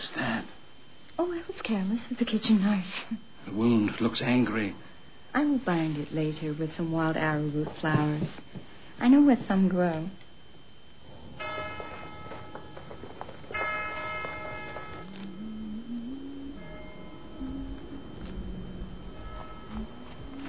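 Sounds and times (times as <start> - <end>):
speech: 1.2 - 10.2
meeting bell tolling: 11.2 - 15.7, 16.5 - 20.4.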